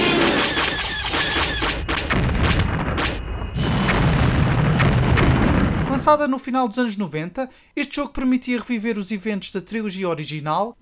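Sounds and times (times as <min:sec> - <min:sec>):
crashing bursts from arcade rail-shooter game: 0:00.0 - 0:06.1
booming blasts from arcade rail-shooter game: 0:01.1 - 0:06.2
speech: 0:06.1 - 0:10.8.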